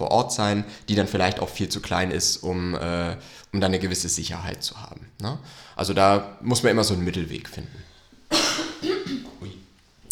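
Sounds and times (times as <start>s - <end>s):
speech: 0.0s - 8.6s
cough: 8.3s - 9.7s.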